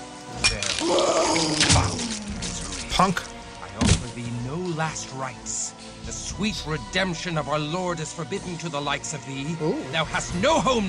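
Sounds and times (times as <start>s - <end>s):
holy water thrown in a video game splashing and fizzing: 0.6s - 3.1s
speech: 3.0s - 3.4s, 4.2s - 10.8s.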